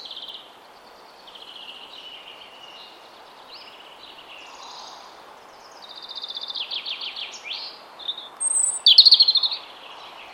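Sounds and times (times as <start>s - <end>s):
European robin song: 0.0s - 10.3s.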